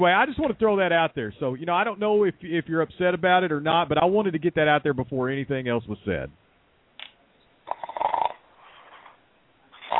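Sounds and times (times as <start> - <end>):
speech: 0.0 - 6.4
person snoring while asleep: 7.7 - 9.2, 9.8 - 9.9.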